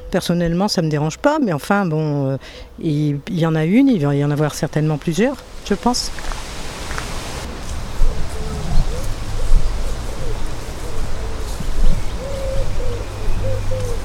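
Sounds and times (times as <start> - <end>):
speech: 0.1 - 6.4
steady outdoor rumble: 2.3 - 14.0
gulls calling along a river: 4.0 - 14.0
ducks calling along a river: 5.2 - 14.0.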